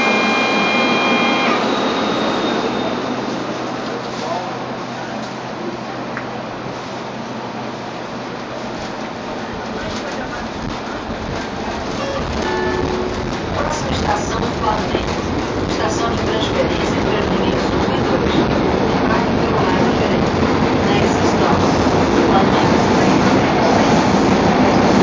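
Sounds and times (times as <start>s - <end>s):
brief tone: 0.0s - 3.3s, 12.0s - 13.4s
subway train rolling toward a station in São Paulo: 0.0s - 25.0s
faint voices: 8.6s - 25.0s.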